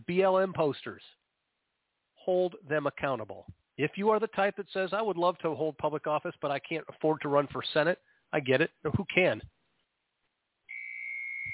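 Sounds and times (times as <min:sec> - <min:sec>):
speech: 0:00.1 - 0:01.2, 0:02.3 - 0:09.6
hard-boiled egg maker alarm tone in a house: 0:10.7 - 0:11.5.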